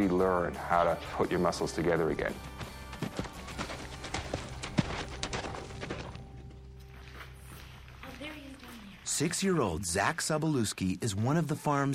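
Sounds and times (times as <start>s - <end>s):
speech: 0.0s - 3.3s, 9.2s - 11.9s
horse hooves clip-clopping at a walking pace: 1.4s - 9.7s.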